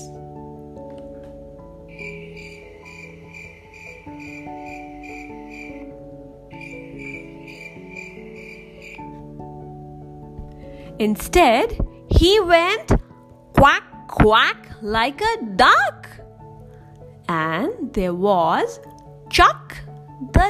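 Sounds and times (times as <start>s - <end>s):
crickets chirping: 1.9s - 9.2s
speech: 11.0s - 13.0s, 13.6s - 16.0s, 17.6s - 19.6s.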